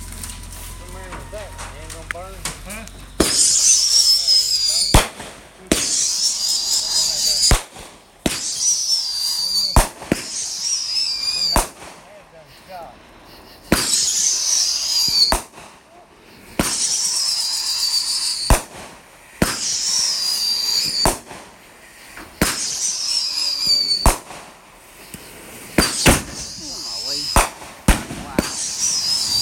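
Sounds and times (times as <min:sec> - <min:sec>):
leftover fireworks popping and banging with hissing crackle: 0:00.0 - 0:29.4.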